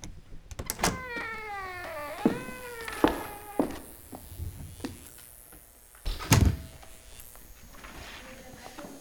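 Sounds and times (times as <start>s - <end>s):
door and latch clunking: 0.0s - 3.8s, 6.1s - 6.8s
surgeon's practice door hinge squealing in Paris apartment: 0.6s - 5.1s.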